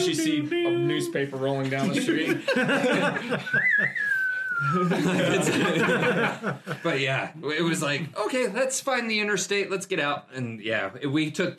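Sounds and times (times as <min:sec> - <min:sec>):
laughter: 0:00.0 - 0:07.2
speech: 0:00.0 - 0:11.5
person whistling a Western-style melody: 0:03.4 - 0:04.9.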